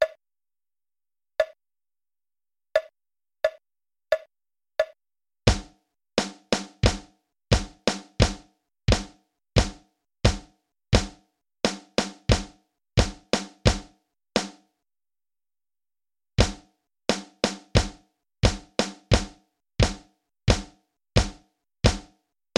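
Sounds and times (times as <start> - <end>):
drums: 5.5 - 14.6, 16.4 - 22.5.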